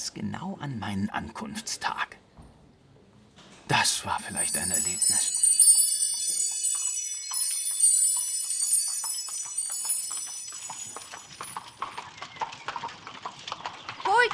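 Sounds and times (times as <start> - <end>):
speech: 0.0 - 2.2, 3.7 - 5.4
high ringing tone: 4.4 - 11.9
horse-drawn carriage hooves clip-clopping in the moat of a castle: 4.7 - 14.3.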